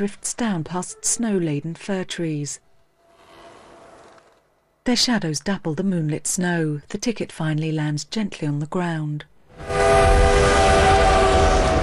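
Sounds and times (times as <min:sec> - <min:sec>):
speech: 0:00.0 - 0:02.7, 0:04.8 - 0:10.4
train rattling past on a track beyond snow-laden fir trees on a moonlit night: 0:09.6 - 0:11.8.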